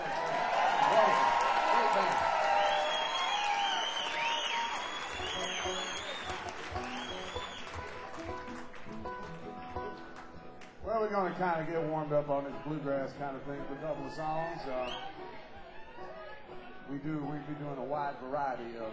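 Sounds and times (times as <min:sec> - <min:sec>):
scattered audience cheers: 0:00.0 - 0:08.1, 0:13.6 - 0:16.9
live audience at a music show clapping: 0:00.0 - 0:11.4
audience whistles: 0:02.4 - 0:08.0, 0:14.7 - 0:15.3
speech: 0:11.2 - 0:15.2, 0:17.0 - 0:18.9.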